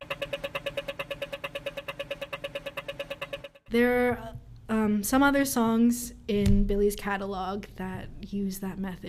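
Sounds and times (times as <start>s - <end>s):
Australian pedestrian crossing walk signal ticking: 0.0s - 3.7s
speech: 3.7s - 9.0s.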